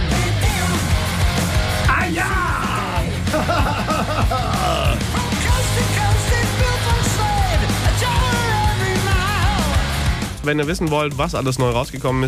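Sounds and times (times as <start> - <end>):
forceful shouted male heavy metal vocal: 0.0 - 1.0, 1.8 - 3.3, 4.1 - 9.9
pounding heavy metal drums: 0.0 - 12.0
distorted heavy metal guitars: 0.0 - 12.1
laughter: 2.9 - 5.9
speech: 10.5 - 12.2.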